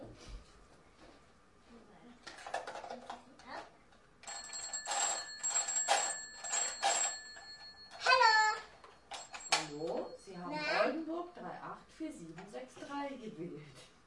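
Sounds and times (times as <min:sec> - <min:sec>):
telephone ringing: 0:04.2 - 0:10.9.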